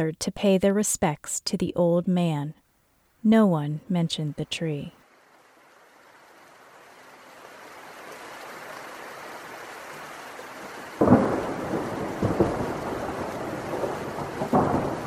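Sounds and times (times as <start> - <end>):
speech: 0.0 - 2.6, 3.2 - 5.0
steady rain at night: 5.0 - 15.0
loud crack of thunder at night: 11.0 - 15.0.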